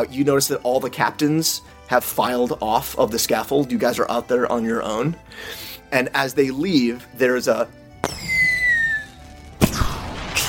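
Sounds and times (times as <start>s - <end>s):
speech: 0.0s - 7.8s
firework crack: 8.0s - 10.4s.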